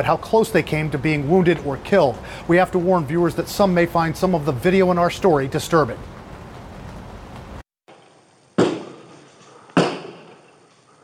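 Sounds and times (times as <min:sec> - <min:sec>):
speech: 0:00.0 - 0:06.1
gunshots fired from a car's rear window toward a sheriff's deputy in Volusia County, Florida: 0:09.8 - 0:10.6.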